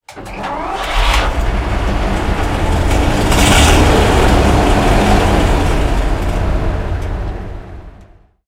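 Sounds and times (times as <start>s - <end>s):
Panzer III tank engine starting, interior: 0.0s - 8.0s.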